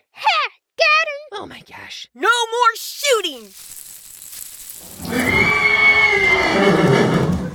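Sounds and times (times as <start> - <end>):
speech: 1.4 - 3.8
loose horse whinnying: 5.1 - 7.4.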